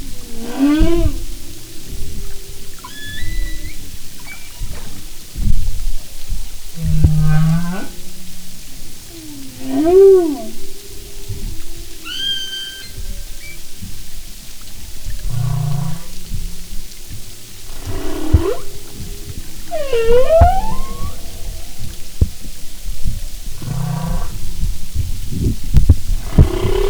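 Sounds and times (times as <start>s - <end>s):
faint high whistles: 0.0s - 5.6s, 6.8s - 14.0s, 17.7s - 22.7s
constant hiss: 0.0s - 26.8s
humpback whale song low grunting pulses: 0.0s - 26.8s.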